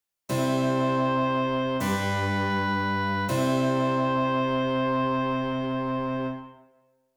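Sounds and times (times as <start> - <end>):
continuo music: 0.3 - 6.7.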